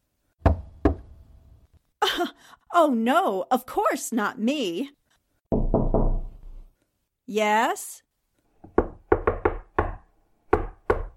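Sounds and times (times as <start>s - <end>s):
knocking on a door: 0.4s - 1.1s, 5.5s - 6.4s, 8.6s - 11.1s
speech: 2.1s - 5.0s, 7.3s - 8.1s.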